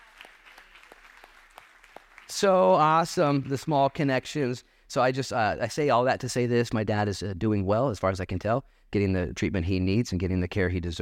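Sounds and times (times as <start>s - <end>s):
audience applause: 0.0s - 3.6s
speech: 2.3s - 11.0s.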